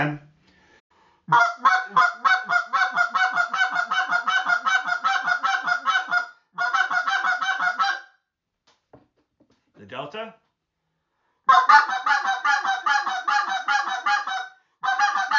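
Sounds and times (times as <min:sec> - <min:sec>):
speech: 0:00.0 - 0:00.3, 0:01.3 - 0:03.2
goose clucks blown on a goose call: 0:01.3 - 0:08.1, 0:11.5 - 0:15.3.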